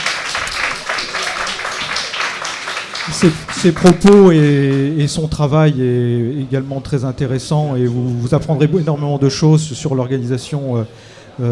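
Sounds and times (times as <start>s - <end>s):
audience applause at a lecture event: 0.0s - 4.9s
speech: 3.1s - 11.5s.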